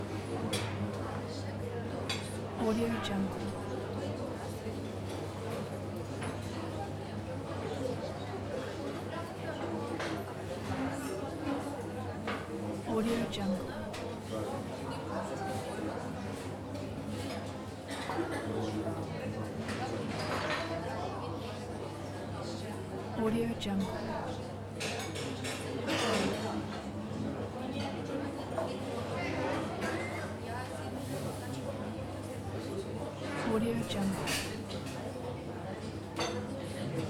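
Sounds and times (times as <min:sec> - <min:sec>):
restaurant ambience: 0:00.0 - 0:37.0.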